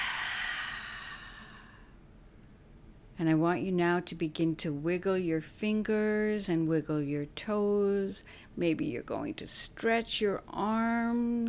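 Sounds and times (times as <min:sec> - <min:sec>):
noisy breath in and out during a guided relaxation exercise: 0:00.0 - 0:02.0
speech: 0:03.2 - 0:11.4.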